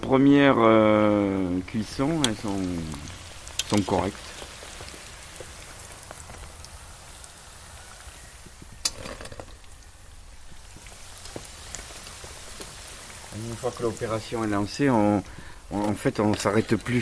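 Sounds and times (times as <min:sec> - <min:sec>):
speech: 0:00.0 - 0:04.3, 0:13.6 - 0:17.0
water from cooked food draining through a colander into a container: 0:01.7 - 0:14.9.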